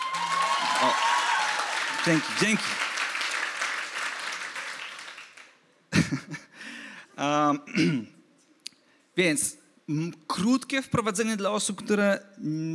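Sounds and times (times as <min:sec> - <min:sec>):
audience applauding in a church: 0:00.0 - 0:05.6
speech: 0:00.8 - 0:01.1, 0:02.0 - 0:02.8, 0:07.2 - 0:08.1, 0:09.2 - 0:12.7
laughter: 0:05.9 - 0:06.6.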